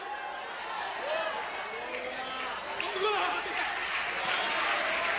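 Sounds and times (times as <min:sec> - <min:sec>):
large indoor church audience applauding: 0:00.3 - 0:05.1.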